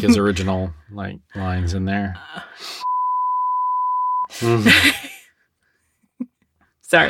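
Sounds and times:
speech: 0.0 - 2.9, 4.3 - 5.1
steady high-pitched censor bleep over a word: 2.8 - 4.3.

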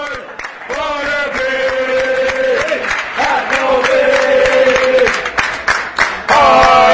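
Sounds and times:
large crowd of football fans singing a terrace chant in unison: 0.0 - 5.3, 6.3 - 6.9
noisy stadium backdrop: 0.0 - 6.9
scattered claps in a stadium: 0.0 - 6.9
scattered shouts in a stadium: 6.3 - 6.9.

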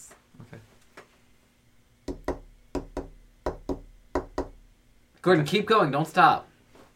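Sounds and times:
knocking on a door: 2.1 - 4.6
speech: 5.2 - 6.5.

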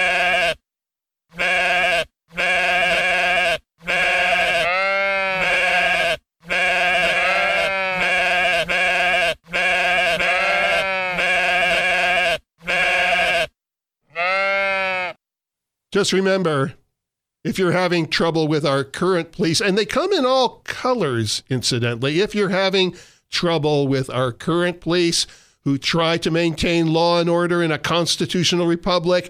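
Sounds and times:
flock of sheep bleating: 0.0 - 0.6, 1.3 - 15.2
speech: 16.0 - 16.8, 17.4 - 29.2.

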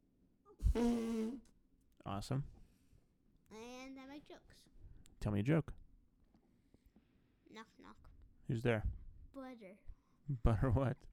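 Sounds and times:
soft puff of breath: 0.6 - 1.4
voice imitating a fart with the mouth: 0.6 - 1.5
speech: 0.8 - 2.6, 4.2 - 5.8, 7.5 - 11.1.

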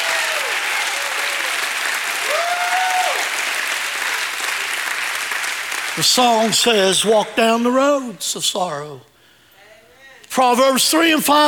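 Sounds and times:
large crowd clapping: 0.0 - 7.4
speech: 6.0 - 9.1, 10.4 - 11.4.

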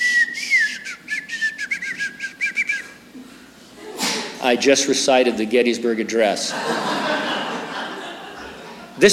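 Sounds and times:
person whistling gliding pitch-bending notes in speech-like bursts: 0.0 - 3.0
speech: 4.4 - 7.0
laughter: 6.4 - 9.1.

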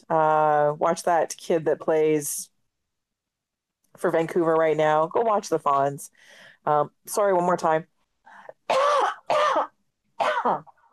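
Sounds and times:
speech: 0.1 - 2.5, 4.0 - 7.9, 10.4 - 10.7
faint breathing: 6.1 - 6.7, 8.2 - 8.6
coughing and throat clearing from a tickle in the throat: 8.7 - 10.8.

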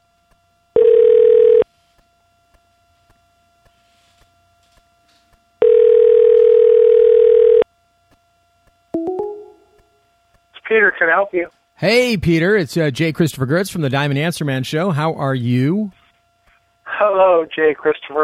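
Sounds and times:
long steady electronic telephone line tones: 0.8 - 1.7, 5.6 - 7.6, 9.0 - 9.8
speech: 10.7 - 16.0, 17.0 - 18.2.

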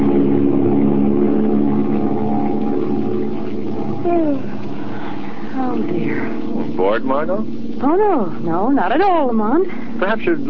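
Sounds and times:
sliding whine: 0.0 - 8.3
passenger plane engines droning in flight above the clouds: 0.0 - 10.4
speech: 7.0 - 10.4.

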